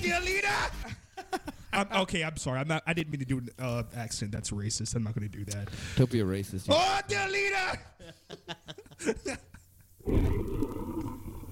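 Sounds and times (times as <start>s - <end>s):
speech: 0.0s - 1.0s, 1.8s - 9.5s
laughter: 8.0s - 9.8s
short throaty vocal bursts: 10.0s - 11.5s.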